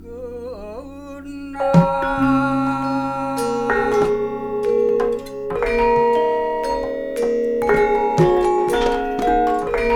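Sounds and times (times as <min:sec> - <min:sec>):
gamelan orchestra playing: 0:02.1 - 0:09.9.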